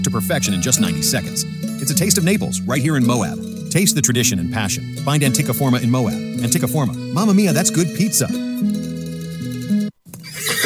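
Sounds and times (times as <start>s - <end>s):
speech: 0.0s - 8.9s
tired horse neighing: 10.2s - 10.6s.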